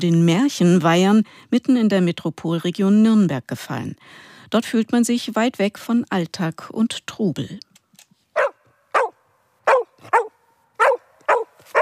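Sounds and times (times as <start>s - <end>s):
speech: 0.0s - 7.7s
herding dog barking excitedly: 8.4s - 11.7s.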